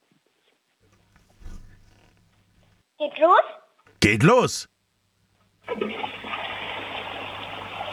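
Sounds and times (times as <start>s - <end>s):
speech: 3.0s - 4.7s
toilet flushing: 5.7s - 7.9s.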